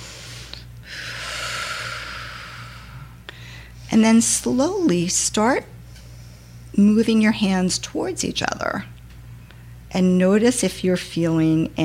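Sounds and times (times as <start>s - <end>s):
person breathing in deeply during a guided breathing exercise: 0.0s - 3.8s
low steady hum: 0.0s - 11.8s
speech: 3.9s - 5.8s, 6.8s - 9.0s, 9.9s - 11.8s.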